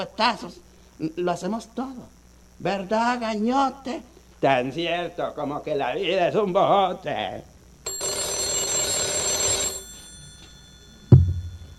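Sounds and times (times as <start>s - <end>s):
speech: 0.0s - 7.5s
telephone bell ringing: 7.8s - 11.7s
low thud: 11.1s - 11.7s.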